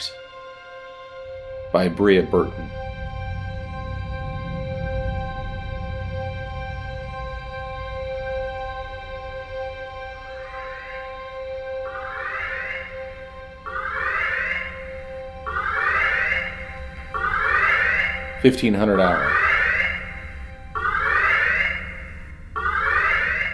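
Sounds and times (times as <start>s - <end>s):
shrill electronic alarm pulses: 0.0s - 23.5s
speech: 1.8s - 2.8s, 18.4s - 19.5s.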